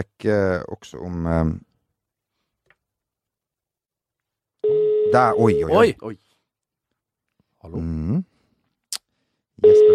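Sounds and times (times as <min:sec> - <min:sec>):
speech: 0:00.0 - 0:01.7, 0:04.7 - 0:06.2, 0:07.6 - 0:08.3, 0:09.6 - 0:09.9
steady electronic telephone line tone: 0:04.6 - 0:05.8, 0:09.6 - 0:09.9.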